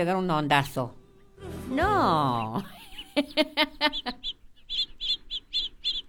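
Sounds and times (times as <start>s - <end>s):
speech: 0.0s - 1.0s, 1.7s - 4.4s
small birds chirping in short high tweets: 0.0s - 6.0s.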